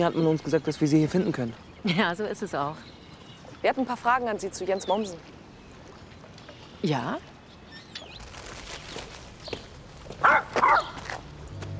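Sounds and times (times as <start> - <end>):
speech: 0.0 - 3.0, 3.6 - 5.4, 6.8 - 7.3
dog barking: 10.2 - 11.0.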